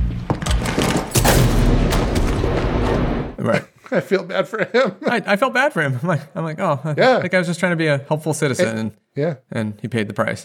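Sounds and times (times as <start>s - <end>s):
gunshots with booming echo: 0.6s - 3.4s
laughter: 3.4s - 7.3s
speech: 3.5s - 10.4s.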